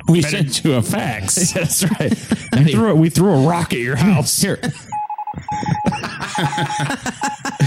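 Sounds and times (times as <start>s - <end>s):
speech: 0.1s - 7.6s
laughter: 0.2s - 3.6s, 4.6s - 7.6s
electronic cell phone beeps: 4.9s - 7.6s.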